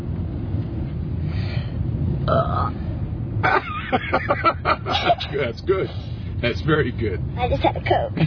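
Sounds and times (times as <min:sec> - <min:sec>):
low steady rumble: 0:00.0 - 0:08.2
person burping loudly: 0:02.2 - 0:02.8
speech: 0:02.3 - 0:02.8, 0:03.4 - 0:08.2.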